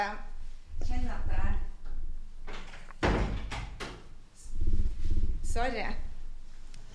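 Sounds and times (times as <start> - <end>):
low hum of wind or room noise: 0.1 - 2.5, 4.2 - 6.8
door pushed shut with a thud and rattle: 2.4 - 4.1
speech: 5.6 - 6.1.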